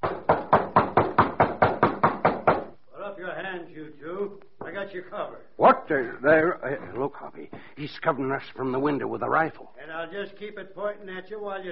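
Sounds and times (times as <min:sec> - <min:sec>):
knocking on a door: 0:00.0 - 0:02.8
speech: 0:04.9 - 0:11.7.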